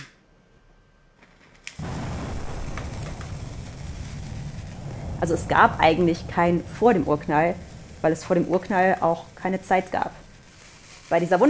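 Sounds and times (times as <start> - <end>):
huge explosion: 1.8 - 11.4
speech: 5.2 - 10.2, 11.1 - 11.4.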